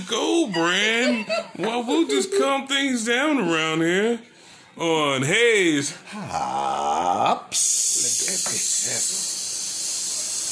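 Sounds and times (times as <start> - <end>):
speech: 0.0 - 9.3
laughter: 0.5 - 3.0
sizzling hiss: 7.5 - 10.5.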